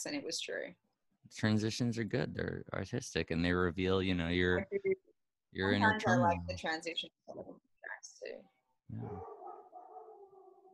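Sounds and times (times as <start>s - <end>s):
speech: 0.0s - 7.6s, 8.2s - 9.4s
dog barking and howling: 9.0s - 10.7s.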